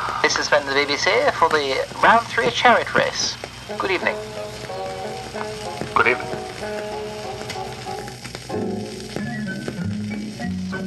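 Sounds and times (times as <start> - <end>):
heavy rain: 0.0 - 10.8
speech: 0.4 - 4.4, 6.0 - 7.0
sustained tonal notes like music playing: 2.8 - 10.8.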